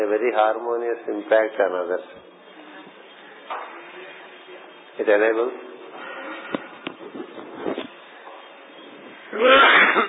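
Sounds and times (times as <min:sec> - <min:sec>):
speech: 0:00.0 - 0:02.3, 0:05.0 - 0:05.7, 0:09.4 - 0:10.0
person coughing: 0:09.4 - 0:10.0.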